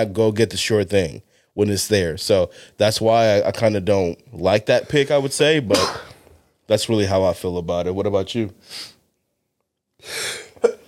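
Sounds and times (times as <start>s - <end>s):
speech: 0.0s - 6.1s, 6.7s - 9.0s, 10.0s - 10.4s
single sneeze with breathy hissing intake: 5.7s - 6.2s.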